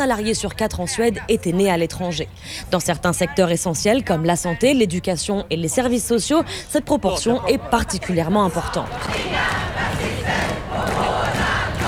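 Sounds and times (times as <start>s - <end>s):
speech: 0.0s - 9.5s
large crowd shouting and roaring at a rally on a public square in Stockholm: 8.1s - 11.8s.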